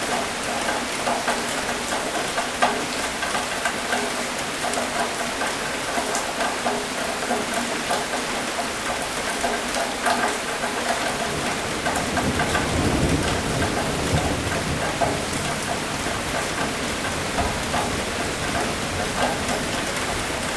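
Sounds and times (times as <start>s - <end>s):
steady dense rain pattering: 0.0s - 20.5s
low rumble of thunder: 11.8s - 18.0s.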